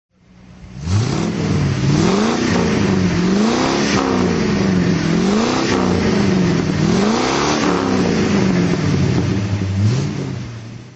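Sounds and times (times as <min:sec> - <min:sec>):
Facel Vega Excellence engine throttle: 0:00.2 - 0:10.9.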